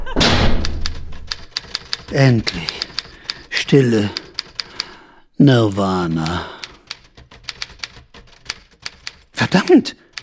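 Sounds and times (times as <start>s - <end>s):
Remington typewriter typing: 0.5s - 5.0s, 6.2s - 9.3s, 10.1s - 10.2s
speech: 2.1s - 2.8s, 3.7s - 4.2s, 5.4s - 6.6s, 9.5s - 10.0s.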